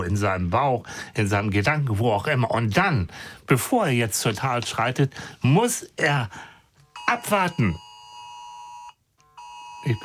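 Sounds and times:
speech: 0:00.0 - 0:06.5, 0:07.1 - 0:07.8, 0:09.8 - 0:10.0
electronic mobile phone ringtone beeping: 0:06.9 - 0:10.0.

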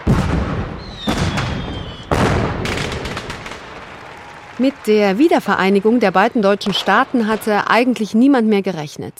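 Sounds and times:
fireworks display celebrating German reunification in Berlin: 0:00.0 - 0:08.3
rising whistle of a firework rocket: 0:00.8 - 0:02.2
speech: 0:04.6 - 0:09.1.

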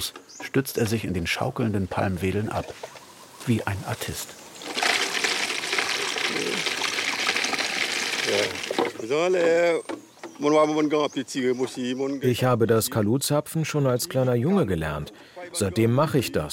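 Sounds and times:
speech: 0:00.0 - 0:04.4, 0:06.3 - 0:06.7, 0:08.3 - 0:16.5
palm sap poured into a canister: 0:04.6 - 0:08.9.

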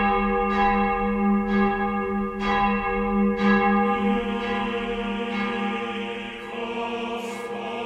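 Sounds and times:
large deep church bell tolling: 0:00.0 - 0:07.7.

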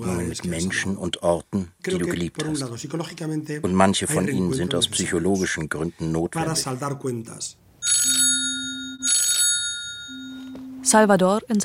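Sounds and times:
speech: 0:00.0 - 0:08.2, 0:10.8 - 0:11.6
mobile phone ringing: 0:07.8 - 0:11.2.

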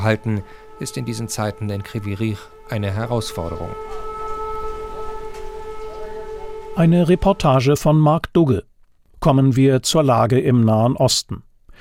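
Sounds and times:
speech: 0:00.0 - 0:04.1, 0:06.8 - 0:11.7
air-raid siren wailing in Kryvyi Rih: 0:00.0 - 0:08.2.

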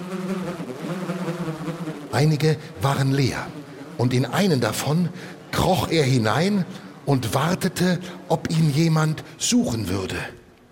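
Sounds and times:
bees buzzing around beehives at a farm: 0:00.0 - 0:08.3
speech: 0:02.2 - 0:10.4.

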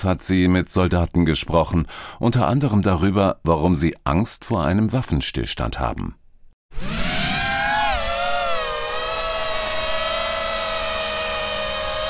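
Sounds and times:
speech: 0:00.0 - 0:07.0
small FPV drone buzzing: 0:06.7 - 0:12.0.

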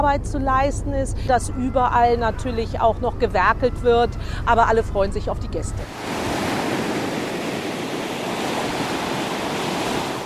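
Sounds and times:
speech: 0:00.0 - 0:06.4
Baltic Sea surf washing onto a shore at Niendorf or Grömitz: 0:05.8 - 0:10.2.

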